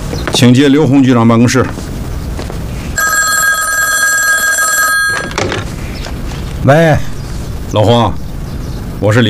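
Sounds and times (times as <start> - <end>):
speech: 0.3 - 1.9, 6.6 - 7.1, 7.7 - 8.2, 9.0 - 9.2
telephone ringing with electric bell tone: 3.0 - 5.6.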